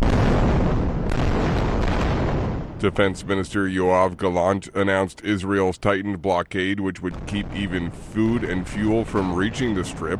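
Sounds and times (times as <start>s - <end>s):
explosions from military strikes at night: 0.0s - 4.5s, 7.0s - 10.1s
speech: 2.8s - 10.1s.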